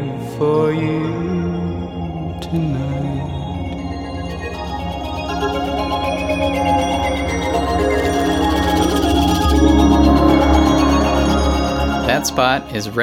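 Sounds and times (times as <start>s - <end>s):
speech: 0.4s - 1.6s, 2.5s - 3.3s, 5.4s - 8.4s, 12.2s - 13.0s
fuller percussion: 1.4s - 13.0s
dense steady musical passage: 3.2s - 13.0s.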